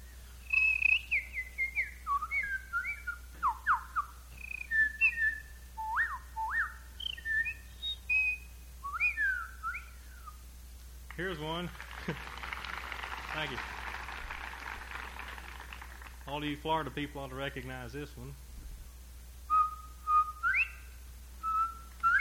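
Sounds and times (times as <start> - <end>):
person whistling imitations of small songbird calls: 0.4 - 10.4, 19.5 - 22.2
speech: 11.2 - 12.4, 13.4 - 13.8, 16.3 - 18.4.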